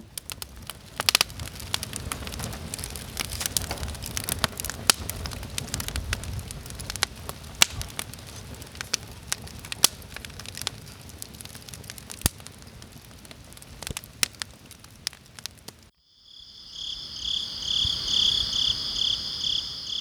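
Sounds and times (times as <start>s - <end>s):
burning wood popping and snapping: 0.0s - 15.9s
campfire crackling: 0.0s - 19.9s
crickets chirping at night: 15.9s - 19.9s.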